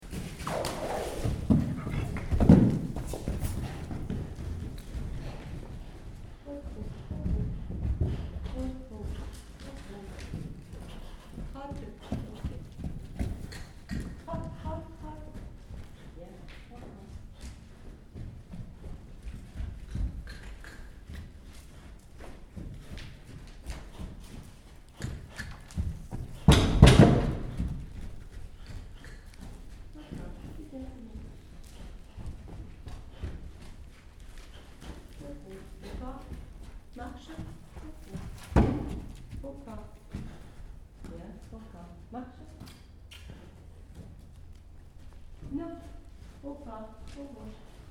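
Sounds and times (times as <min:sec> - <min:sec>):
horse warming up: 0:00.0 - 0:47.9.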